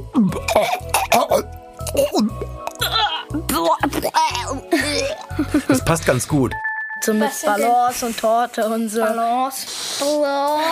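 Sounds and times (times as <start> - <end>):
person retching and gagging: 0.0 - 5.5
person clearing throat: 0.1 - 5.3
speech: 5.9 - 10.7.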